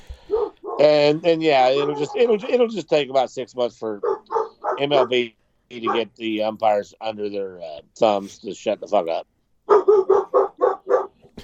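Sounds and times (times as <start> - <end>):
dogs barking: 0.2 - 2.9, 3.9 - 6.2, 9.7 - 11.2
speech: 0.8 - 4.2, 4.8 - 9.3.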